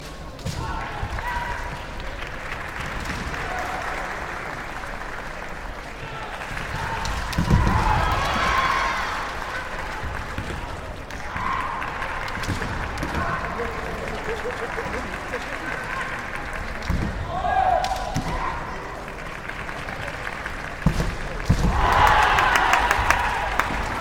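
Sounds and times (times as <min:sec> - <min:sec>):
men practising kendo: 0:00.0 - 0:04.5, 0:05.7 - 0:19.0, 0:20.8 - 0:23.9
laughter: 0:12.9 - 0:16.4.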